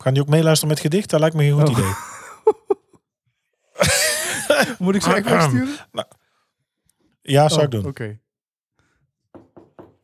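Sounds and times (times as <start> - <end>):
speech: 0.0 - 2.6, 4.6 - 6.2, 7.2 - 8.2
laughter: 1.6 - 3.0, 3.8 - 6.0
firm knocking on a door: 9.3 - 10.0.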